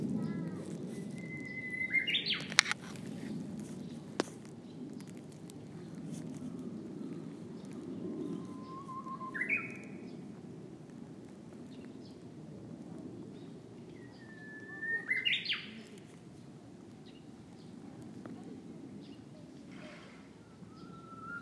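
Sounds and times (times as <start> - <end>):
uguisu bush warbler: 0.2 - 10.3, 13.3 - 16.1, 20.2 - 21.4.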